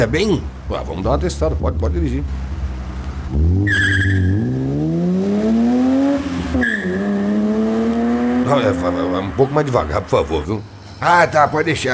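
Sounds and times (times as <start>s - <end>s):
speech: 0.0s - 2.5s, 3.3s - 3.9s, 8.5s - 11.9s
BMW car engine roaring under hard acceleration during a test drive: 1.0s - 10.5s
BMW car tires squealing: 3.3s - 10.5s.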